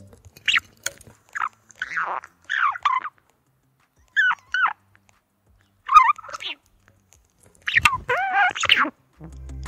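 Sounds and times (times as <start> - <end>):
budgerigar screeching: 0.4 - 0.7, 1.3 - 3.2, 4.1 - 4.8, 5.8 - 6.7, 7.6 - 9.0.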